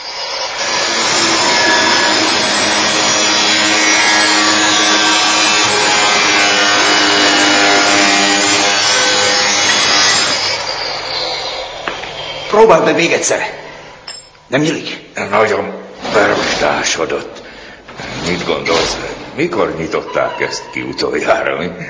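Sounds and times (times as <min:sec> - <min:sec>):
hand saw cutting through wood at a London sewer entrance: 0:00.0 - 0:10.6
speech: 0:12.6 - 0:13.6, 0:14.5 - 0:17.4, 0:18.1 - 0:21.8.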